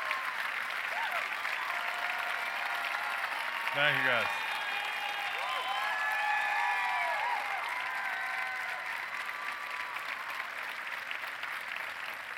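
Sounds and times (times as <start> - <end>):
crowd whooping and cheering: 0.0 - 11.1
crowd applauding: 0.0 - 12.3
speech: 3.7 - 4.4.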